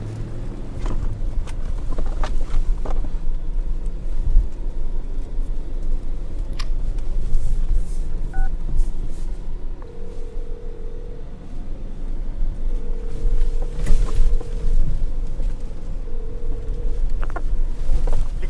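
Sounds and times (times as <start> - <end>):
car engine low rumble: 0.0 - 18.4
phone dialing beeps on speakerphone in a car: 8.3 - 8.5, 9.8 - 11.3, 12.7 - 14.9, 16.0 - 17.2.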